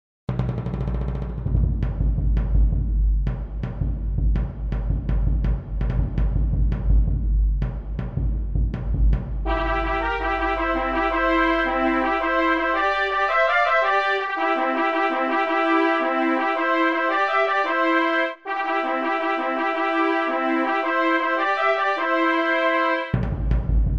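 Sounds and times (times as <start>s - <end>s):
drum roll: 0.3s - 12.8s, 23.1s - 23.9s
fanfare: 9.5s - 23.2s.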